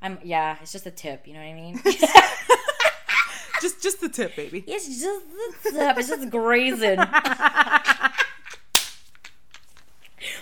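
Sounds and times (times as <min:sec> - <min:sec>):
speech: 0:00.0 - 0:02.6, 0:03.6 - 0:08.3
rhythmic laughter: 0:01.8 - 0:03.8, 0:05.6 - 0:10.1
sharp whip crack: 0:08.8 - 0:09.0.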